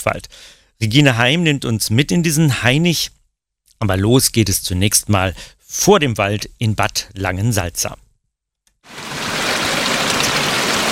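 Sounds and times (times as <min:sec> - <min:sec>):
speech: 0:00.0 - 0:03.2, 0:03.8 - 0:08.0
brook babbling and rushing through a park: 0:08.9 - 0:10.9.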